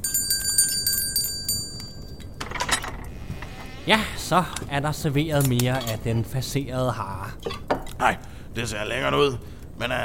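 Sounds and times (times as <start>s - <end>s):
small hand bell ringing: 0.0s - 2.4s
speech: 3.9s - 10.0s.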